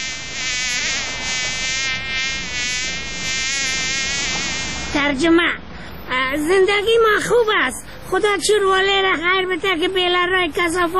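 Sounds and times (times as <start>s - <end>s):
fly buzzing with a high whine: 0.0s - 5.0s
speech: 5.1s - 10.9s.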